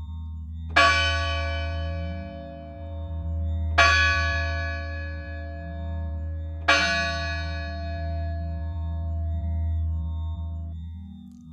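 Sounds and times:
steady low hum: 0:00.0 - 0:11.5
village church bell tolling a death knell: 0:00.8 - 0:02.8, 0:03.8 - 0:06.1, 0:06.7 - 0:08.6.

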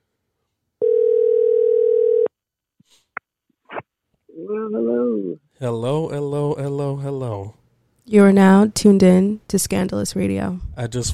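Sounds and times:
telephone dial tone of an outgoing call: 0:00.8 - 0:02.3
short warbling voiced sound: 0:04.3 - 0:05.4
speech: 0:04.4 - 0:11.1.

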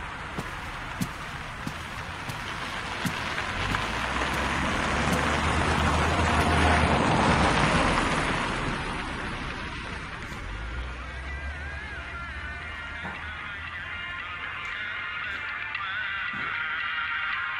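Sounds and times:
steady rain falling near a river: 0:00.0 - 0:11.2
low engine-like rumble: 0:00.0 - 0:17.4
scattered rain drips and soft splashes: 0:00.4 - 0:10.4.

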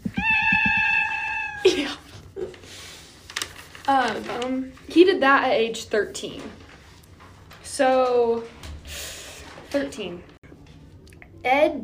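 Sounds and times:
cat meowing: 0:00.0 - 0:01.7
speech: 0:03.9 - 0:06.6, 0:07.8 - 0:09.0, 0:09.7 - 0:10.3, 0:11.4 - 0:11.8.

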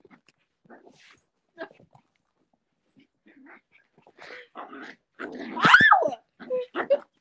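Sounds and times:
puppy growling and yipping during a playful tussle: 0:04.4 - 0:07.1.

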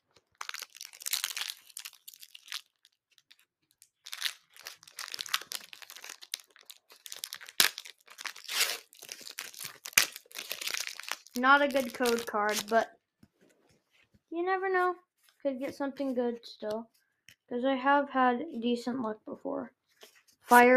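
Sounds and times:
trading card booster pack wrapper crinkling and tearing open by hand: 0:00.1 - 0:12.9
speech: 0:11.4 - 0:13.0, 0:14.4 - 0:19.8, 0:20.5 - 0:20.7.

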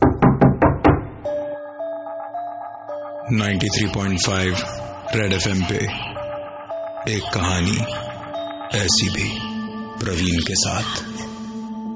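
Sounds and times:
firm knocks on a hotel room door: 0:00.0 - 0:01.2
soft sustained musical tones: 0:01.2 - 0:11.9
speech: 0:03.3 - 0:06.1, 0:07.0 - 0:08.1, 0:08.7 - 0:11.3.

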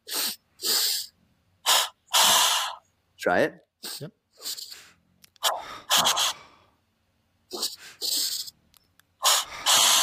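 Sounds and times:
forceful breathing in through the nose and out through the mouth during a breathing exercise: 0:00.0 - 0:02.9, 0:03.8 - 0:06.8, 0:07.5 - 0:08.6, 0:09.2 - 0:10.0
speech: 0:03.2 - 0:04.6.

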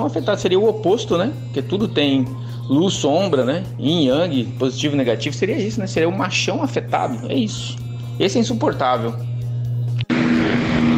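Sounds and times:
speech: 0:00.0 - 0:09.3
lowered pickup truck engine droning: 0:10.1 - 0:10.9.

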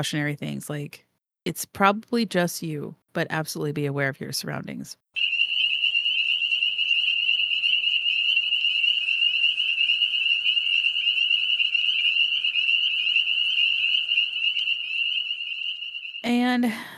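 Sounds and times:
speech: 0:00.0 - 0:05.4, 0:16.6 - 0:16.9
dense chorus of frogs calling with high-pitched trilling: 0:05.2 - 0:16.4.

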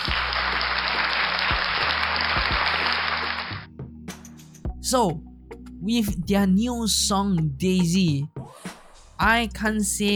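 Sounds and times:
crowd applause: 0:00.0 - 0:03.7
speech: 0:04.9 - 0:08.4, 0:09.2 - 0:10.1.

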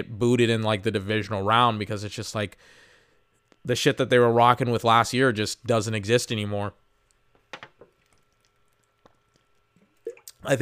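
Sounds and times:
speech: 0:00.0 - 0:02.9, 0:03.6 - 0:06.8, 0:10.4 - 0:10.6
person drinking water with soft gulps: 0:07.8 - 0:10.4.

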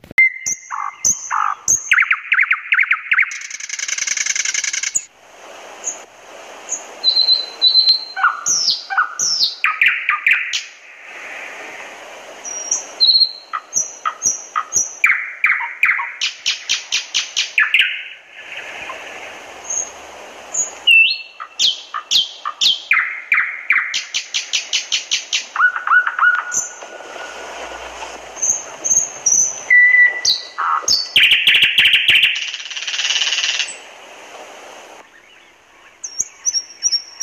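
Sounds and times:
nightingale singing: 0:00.0 - 0:05.1, 0:06.6 - 0:10.8, 0:12.4 - 0:27.4, 0:28.4 - 0:33.9, 0:35.0 - 0:37.2.

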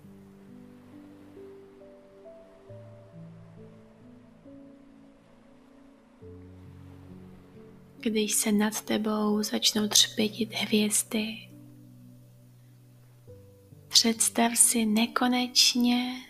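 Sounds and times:
soft sea waves washing onto the shore: 0:00.0 - 0:09.8
slow sustained ambient chords: 0:00.0 - 0:13.9
speech: 0:08.0 - 0:11.5, 0:14.0 - 0:16.2.

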